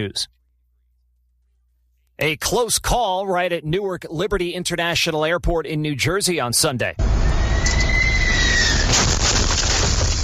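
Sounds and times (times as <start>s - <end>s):
speech: 0.0s - 0.4s, 2.2s - 7.5s, 8.9s - 9.2s
truck engine and road rumble inside a tractor trailer cab: 7.0s - 10.2s.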